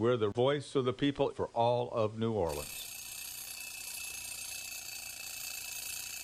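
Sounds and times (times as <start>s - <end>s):
speech: 0.0s - 2.9s
alarm clock ringing: 2.5s - 6.2s.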